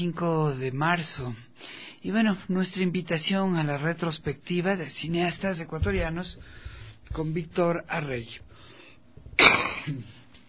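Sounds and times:
speech: 0:00.0 - 0:08.7, 0:09.4 - 0:10.2
cough: 0:09.4 - 0:10.1.

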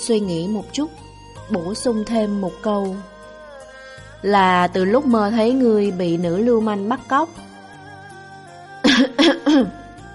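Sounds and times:
speech: 0:00.0 - 0:03.1, 0:04.2 - 0:07.4, 0:09.1 - 0:09.8
dry cough: 0:08.9 - 0:09.8.

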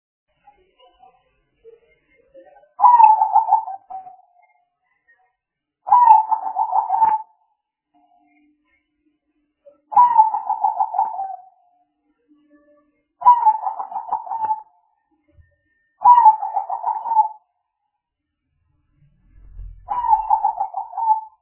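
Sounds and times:
spotted dove cooing used as a lure: 0:02.8 - 0:04.1, 0:05.9 - 0:07.3, 0:09.9 - 0:11.5, 0:13.2 - 0:14.6, 0:16.0 - 0:17.4, 0:19.9 - 0:21.4.

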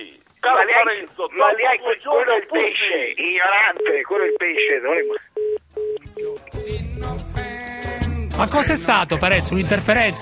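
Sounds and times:
speech: 0:00.0 - 0:05.3, 0:08.4 - 0:10.2
telephone busy tone beeps after the caller hangs up: 0:05.0 - 0:06.8
louder fuller music: 0:06.0 - 0:10.2.

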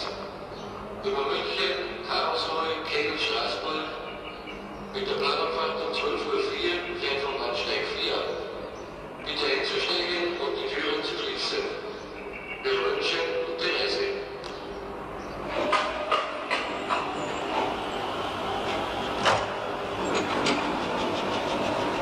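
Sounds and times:
train running along the track: 0:00.0 - 0:21.9
metallic clacks and knocks of a train on track: 0:15.5 - 0:17.1.

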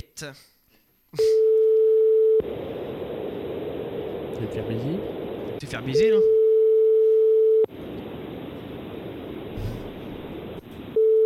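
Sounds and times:
speech: 0:00.2 - 0:00.5, 0:01.1 - 0:01.5, 0:04.4 - 0:06.4
telephone dial tone while calling a listener live on air: 0:01.4 - 0:02.4, 0:06.3 - 0:07.7, 0:10.9 - 0:11.2
constant hiss of telephone line noise: 0:02.4 - 0:06.4, 0:07.5 - 0:11.2.

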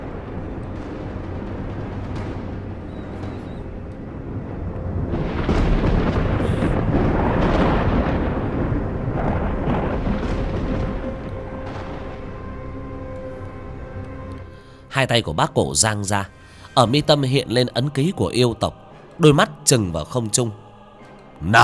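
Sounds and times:
thunder crash from a lightning strike: 0:00.0 - 0:13.5
speech: 0:15.0 - 0:20.6, 0:21.4 - 0:21.6.

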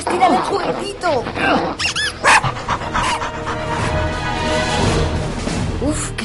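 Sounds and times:
small dog panting rapidly: 0:00.0 - 0:04.8
speech: 0:00.1 - 0:02.6, 0:05.8 - 0:06.2
small dog yapping and whining: 0:02.0 - 0:03.2.

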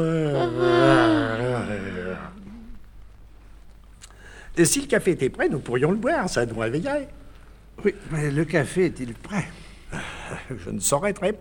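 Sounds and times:
speech: 0:00.0 - 0:01.0, 0:04.6 - 0:07.2, 0:07.8 - 0:11.3
actor in a stage play giving a long voiced yawn: 0:00.0 - 0:02.8.

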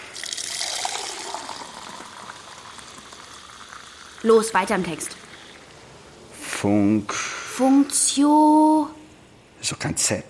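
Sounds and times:
tap water running into a drinking glass: 0:00.0 - 0:05.9
speech: 0:04.2 - 0:05.2, 0:06.6 - 0:09.0, 0:09.6 - 0:10.2.

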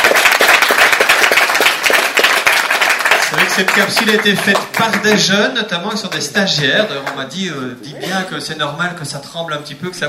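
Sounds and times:
audience applause at a live event after a short video screening: 0:00.0 - 0:05.3
speech: 0:03.6 - 0:10.0.

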